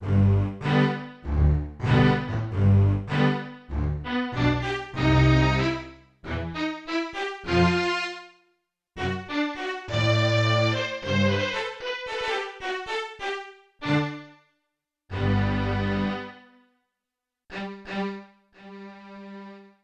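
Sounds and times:
Yamaha TX16W sampled strings: 0.0s - 8.2s, 9.0s - 14.2s, 15.1s - 16.4s.

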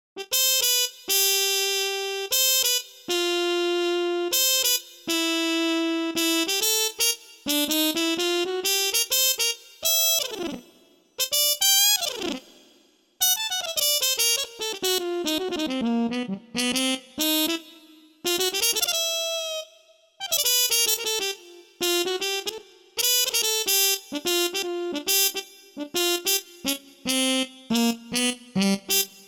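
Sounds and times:
muted trumpet: 0.2s - 12.6s, 13.2s - 29.2s.

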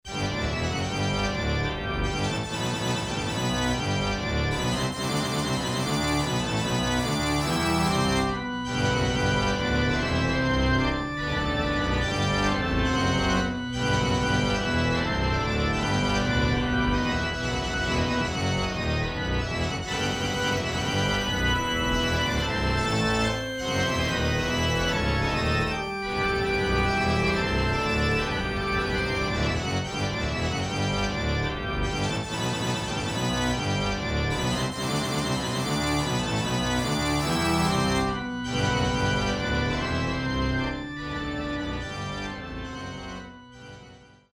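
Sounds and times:
pipe organ music: 0.0s - 44.3s.

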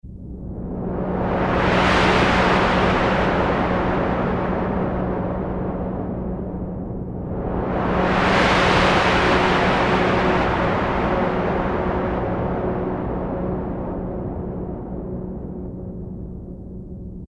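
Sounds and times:
Korg Poly-800 jet plane sound: 0.1s - 16.7s.

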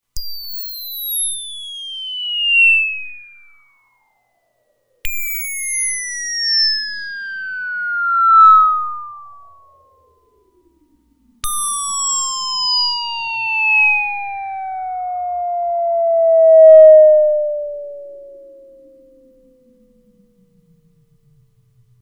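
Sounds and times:
Roland Alpha Juno-2 synthesizer piccolo tone: 1.8s - 4.3s, 5.1s - 10.6s, 11.4s - 20.2s.

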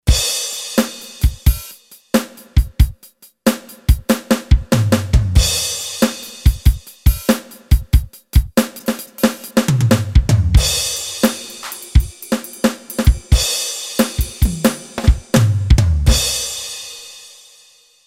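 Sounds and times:
Roland SC-880 standard drum kit rhythm set: 0.0s - 17.6s.

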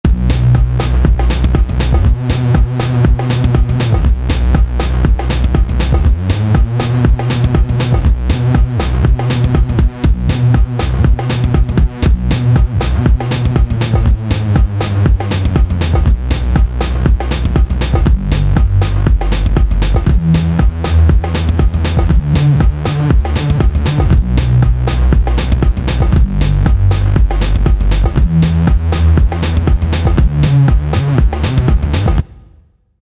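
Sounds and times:
electronic music: 0.0s - 32.4s.

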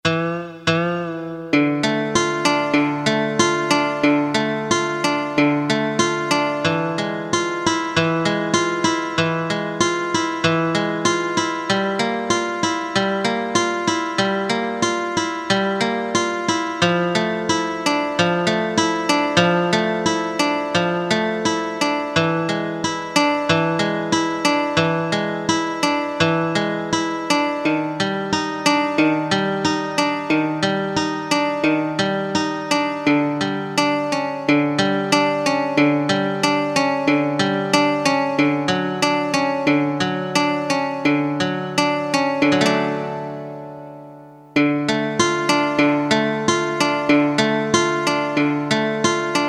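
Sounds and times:
acoustic guitar sample on a Korg DSS-1: 0.0s - 49.4s.

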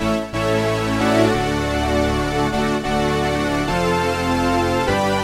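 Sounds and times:
vintage polyphonic synth: 0.2s - 5.1s.

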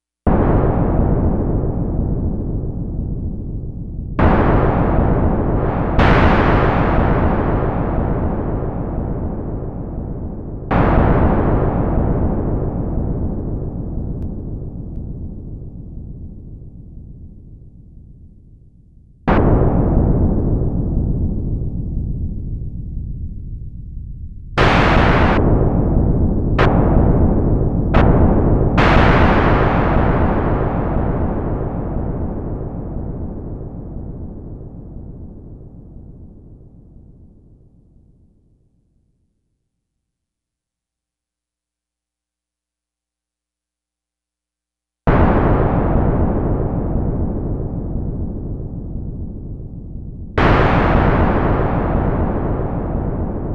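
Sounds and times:
Minimoog synthesizer thunder sound: 0.3s - 16.7s, 19.3s - 22.4s, 24.6s - 37.4s, 45.1s - 53.5s.

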